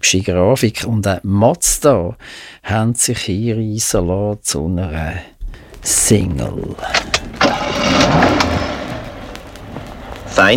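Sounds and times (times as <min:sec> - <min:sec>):
speech: 0:00.0 - 0:08.6, 0:10.4 - 0:10.5
car engine cranking, starting and idling: 0:06.8 - 0:10.5.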